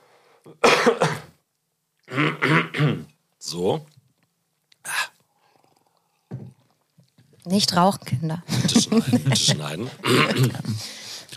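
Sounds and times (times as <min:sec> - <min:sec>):
person clearing throat: 0:00.5 - 0:01.4, 0:02.1 - 0:03.2, 0:10.0 - 0:10.8
person coughing with rough throaty hacks: 0:00.6 - 0:01.4, 0:02.1 - 0:03.1, 0:10.0 - 0:10.8
speech: 0:03.5 - 0:04.0, 0:07.5 - 0:11.0
laughter: 0:08.5 - 0:10.9.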